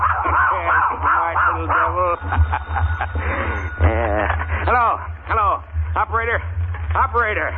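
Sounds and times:
dog yipping and barking: 0.0 - 3.8
laughter: 0.0 - 5.1
rough noisy sound: 0.0 - 7.5
steady low hum: 0.0 - 7.5
speech: 0.8 - 7.5.

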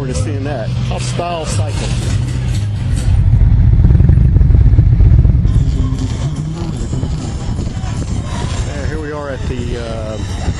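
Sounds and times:
speech: 0.1 - 2.2, 9.4 - 10.5
mini motorcycles revving at the starting line of a racetrack: 3.3 - 8.7.

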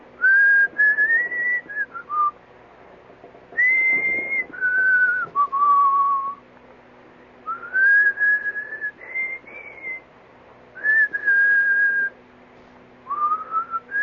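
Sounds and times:
faint steady hum: 0.0 - 14.0
man whistling a tune: 0.2 - 2.4, 3.6 - 6.4, 7.4 - 10.1, 10.8 - 12.2, 13.1 - 14.0.

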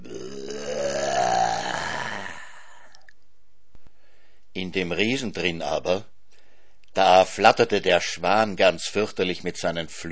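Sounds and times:
long loud throaty burp: 0.0 - 3.1
speech: 4.7 - 6.1, 7.0 - 10.1.

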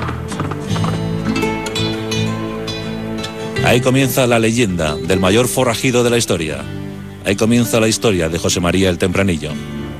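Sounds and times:
horse hooves galloping: 0.0 - 2.6
sustained musical backdrop of steady tones: 0.2 - 9.9
speech: 3.7 - 9.8.

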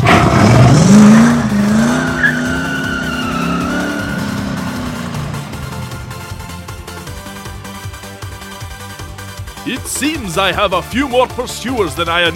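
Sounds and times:
tire squeal: 0.0 - 6.4
car engine revving as the vehicle accelerates: 0.0 - 8.2
speech: 9.8 - 12.3.

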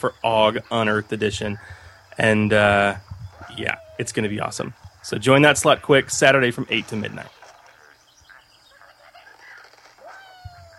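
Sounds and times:
speech: 0.0 - 7.4
cartoonish bird sound effect from a mobile game: 3.3 - 4.1, 7.2 - 10.7.

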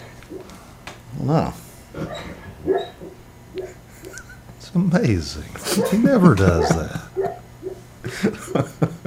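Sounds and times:
speech: 1.2 - 2.1, 4.8 - 7.0
dog whining with brief yelps: 2.0 - 4.4, 5.7 - 7.9
laughter: 3.6 - 4.6, 5.6 - 7.4, 8.0 - 9.0.

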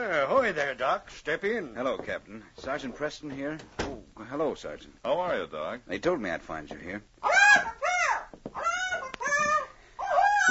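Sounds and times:
speech: 0.4 - 7.7
bird calling in loud nasal squawks: 7.2 - 10.4.

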